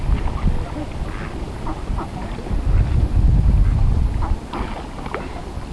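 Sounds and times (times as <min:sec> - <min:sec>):
ducks on the Thames: 0:00.2 - 0:03.0, 0:03.6 - 0:05.4.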